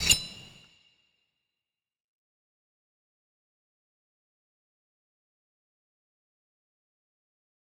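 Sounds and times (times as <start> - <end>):
normal slash: 0.0 - 0.7.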